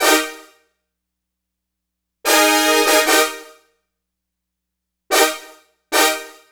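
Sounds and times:
synthesized brass section with synthetic winds: 0:02.3 - 0:03.4.

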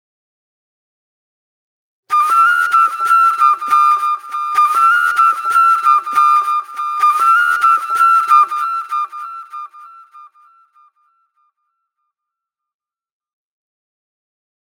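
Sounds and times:
acid trip flute: 0:02.1 - 0:11.3.

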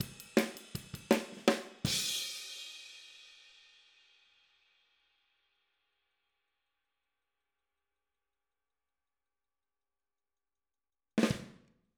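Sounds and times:
outro hi-hat drum pattern: 0:00.0 - 0:02.6.

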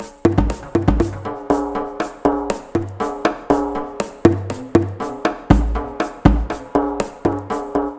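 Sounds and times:
conga loop: 0:00.0 - 0:07.9.

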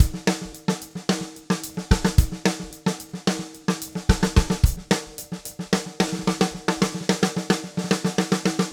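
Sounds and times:
maple drum kit groove: 0:00.0 - 0:08.7.

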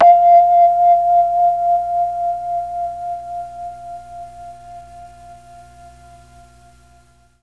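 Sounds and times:
F3 vibraphone note on a Mellotron MKII: 0:00.0 - 0:05.2.

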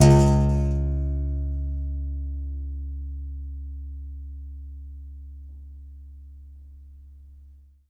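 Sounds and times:
contrabass balalaika plucked strings: 0:00.0 - 0:02.0.

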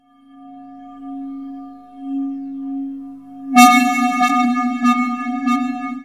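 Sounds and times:
space echo effect in ragga and dub reggae: 0:03.6 - 0:06.0.

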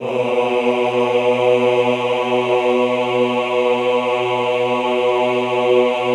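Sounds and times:
classical choir singing ahh: 0:00.0 - 0:06.1.

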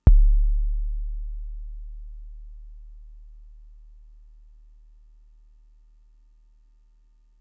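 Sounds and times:
drum machine kick drum: 0:00.0 - 0:03.8.

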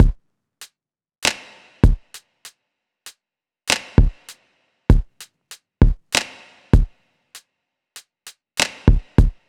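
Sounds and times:
hip-hop drum loop: 0:00.0 - 0:00.2, 0:01.2 - 0:02.2, 0:03.7 - 0:07.0, 0:08.6 - 0:09.4.

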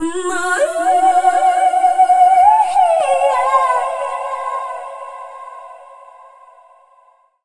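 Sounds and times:
female dance vocals: 0:00.0 - 0:05.8.

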